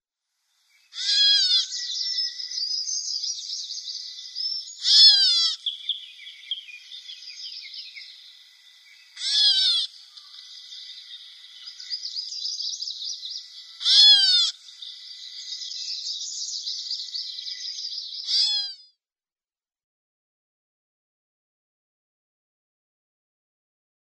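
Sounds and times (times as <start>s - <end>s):
Grey Catbird calls: 0.8s - 18.8s.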